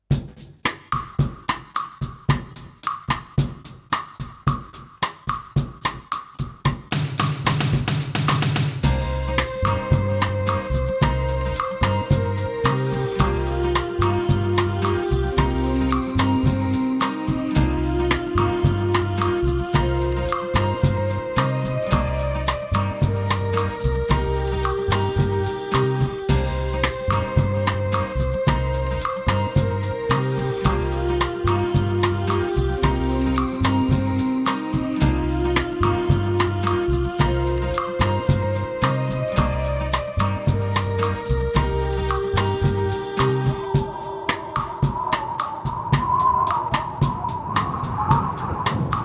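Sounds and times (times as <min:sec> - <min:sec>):
instrumental backing track without claps: 0:00.8 - 0:49.0.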